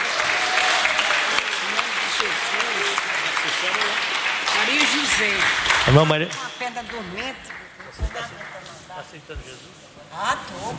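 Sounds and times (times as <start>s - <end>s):
church audience clapping hands: 0.0s - 9.4s
voices murmuring: 3.3s - 9.3s
speech: 5.1s - 10.7s.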